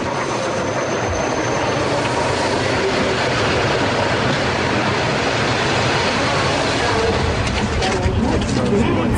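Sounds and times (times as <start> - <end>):
electric commuter train pulling into a platform with rattling carriages: 0.0 - 9.1
indistinct voices murmuring faintly: 6.3 - 9.1.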